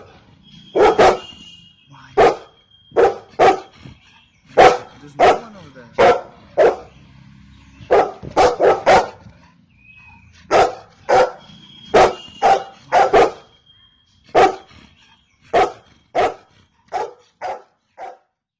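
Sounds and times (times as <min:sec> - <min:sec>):
golden retriever barking in bursts: 0:00.7 - 0:01.4, 0:02.2 - 0:03.7, 0:04.6 - 0:07.0, 0:07.8 - 0:14.7, 0:15.5 - 0:18.3
speech: 0:05.0 - 0:06.2.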